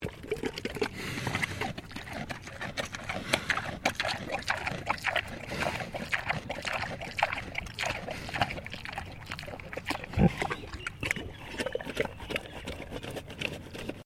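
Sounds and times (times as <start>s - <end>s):
Landrace pig eating peaches: 0.0s - 14.0s.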